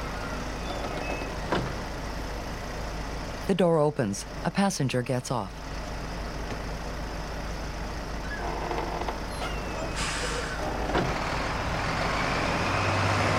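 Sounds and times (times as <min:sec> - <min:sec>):
bus pulling away from a feed-and-seed store in Montana: 0:00.0 - 0:13.3
speech: 0:03.5 - 0:05.6
bus air brakes hissing: 0:09.3 - 0:11.2.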